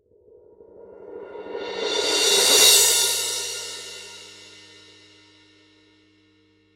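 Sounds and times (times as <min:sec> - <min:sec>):
17 inch rock crash cymbal roll: 0:01.0 - 0:05.6.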